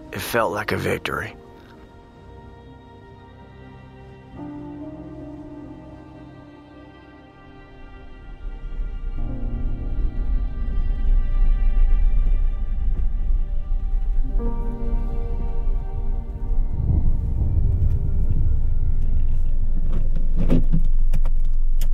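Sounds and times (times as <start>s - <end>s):
speech: 0.1s - 1.4s
car engine rumble while driving: 8.3s - 21.9s.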